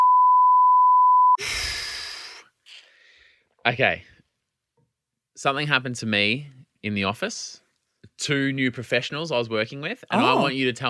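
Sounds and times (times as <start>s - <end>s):
censor bleep over removed speech: 0.0s - 1.4s
breathy sigh-like exhale: 1.4s - 3.5s
speech: 3.6s - 4.1s, 5.4s - 7.6s, 8.2s - 10.8s.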